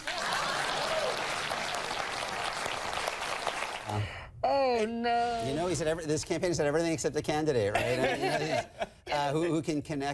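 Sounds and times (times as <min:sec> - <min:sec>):
audience clapping: 0:00.0 - 0:04.0
speech: 0:04.8 - 0:10.1
laughter: 0:07.8 - 0:09.1.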